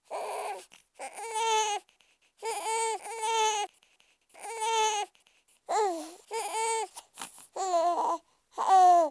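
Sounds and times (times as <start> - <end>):
baby crying: 0.0 - 3.7, 4.4 - 5.1, 5.7 - 7.0, 7.6 - 9.0.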